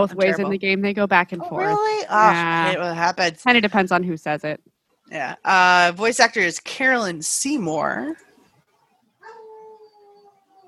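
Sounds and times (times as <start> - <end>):
speech: 0.0 - 8.3
dog howling: 9.2 - 10.6.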